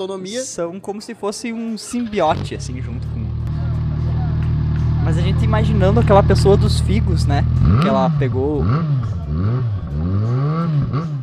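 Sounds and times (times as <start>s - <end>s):
speech: 0.0s - 3.2s, 5.0s - 9.8s
loud motorcycle engine passing at low speed: 1.9s - 11.2s.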